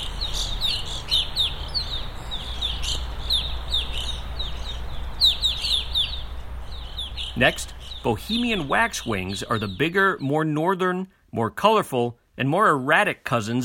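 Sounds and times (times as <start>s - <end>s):
low steady background rumble: 0.0s - 10.3s
evening grosbeak feeder flock calls: 0.0s - 10.4s
speech: 7.4s - 13.6s.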